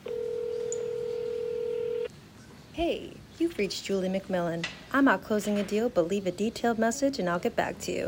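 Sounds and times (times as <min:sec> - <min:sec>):
cell phone electronic keypad tone in an office: 0:00.0 - 0:02.1
speech: 0:02.8 - 0:08.0.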